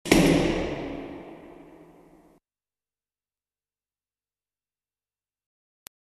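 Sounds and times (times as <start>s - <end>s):
hammer: 0.0s - 2.4s.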